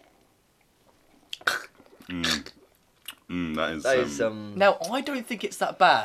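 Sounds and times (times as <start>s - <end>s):
throaty voiced gulp or exhale: 1.2s - 4.0s
person taking a sip of beer: 1.2s - 4.1s
speech: 2.1s - 2.6s, 3.3s - 6.0s.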